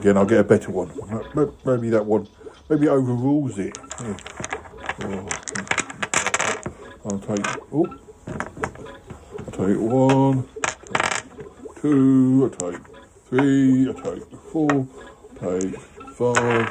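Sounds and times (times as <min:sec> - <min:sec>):
speech: 0:00.0 - 0:04.4, 0:05.0 - 0:05.8, 0:07.0 - 0:08.7, 0:09.6 - 0:10.6, 0:11.8 - 0:16.6
dice rattling and clattering: 0:03.7 - 0:07.6, 0:10.6 - 0:11.4, 0:15.5 - 0:16.6.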